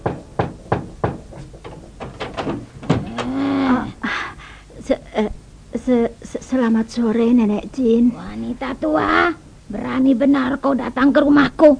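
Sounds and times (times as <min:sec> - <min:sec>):
knocking on a house door: 0:00.0 - 0:03.4
speech: 0:05.9 - 0:11.7.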